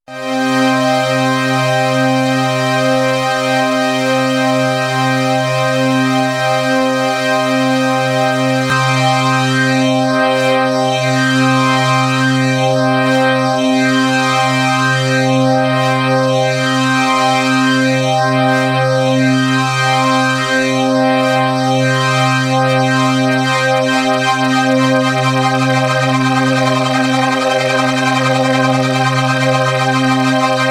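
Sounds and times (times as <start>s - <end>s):
variable synth with scanner vibrato: 0.1s - 30.6s.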